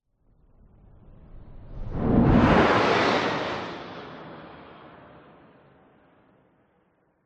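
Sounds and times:
designed sound of fighter jet passing by fast: 1.6 - 5.6.

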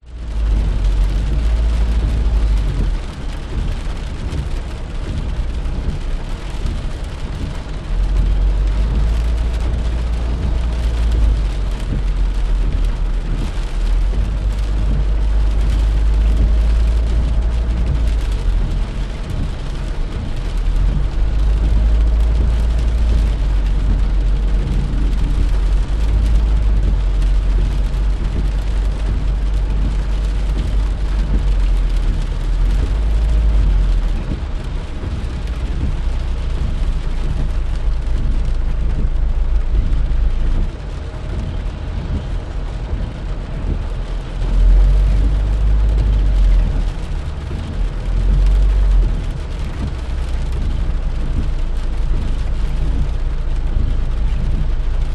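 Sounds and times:
car driving slowly in a traffic jam: 0.0 - 55.1
train interior noise: 0.1 - 55.1.

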